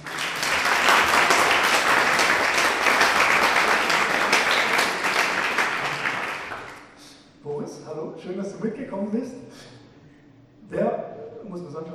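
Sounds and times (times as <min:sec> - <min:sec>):
audience applauding to welcome a guest: 0:00.0 - 0:06.9
speech: 0:08.6 - 0:09.4.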